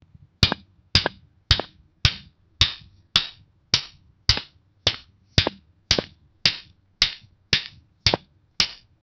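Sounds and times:
loud sticks: 0:00.4 - 0:09.0.

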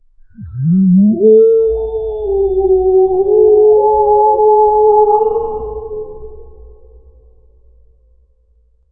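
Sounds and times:
realistic underwater whale hump: 0:00.2 - 0:07.2.

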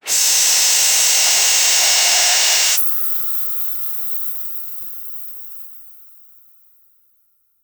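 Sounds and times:
high pressure squirt blast: 0:00.0 - 0:02.9.

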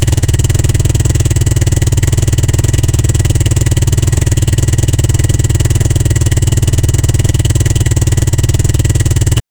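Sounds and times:
sport motorcycle engine: 0:00.0 - 0:09.4.

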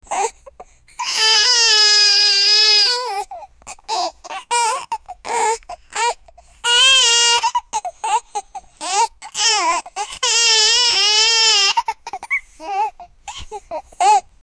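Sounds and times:
baby crying: 0:00.1 - 0:14.3.

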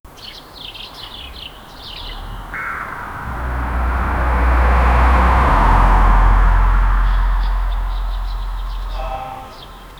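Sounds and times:
soft cinematic background music: 0:02.2 - 0:09.9.

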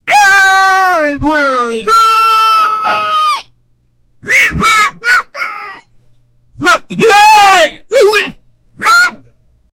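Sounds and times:
man screaming funnily as a goblin: 0:00.0 - 0:03.5, 0:04.2 - 0:05.9, 0:06.6 - 0:09.2.

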